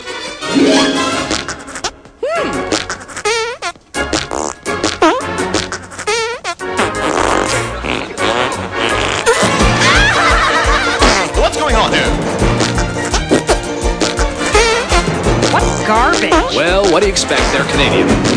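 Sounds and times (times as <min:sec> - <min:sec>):
song: 0:00.3 - 0:02.2
fart sounds in a song: 0:01.3 - 0:09.8, 0:11.0 - 0:11.4, 0:12.6 - 0:16.5, 0:17.3 - 0:18.3
laughter: 0:07.5 - 0:11.9.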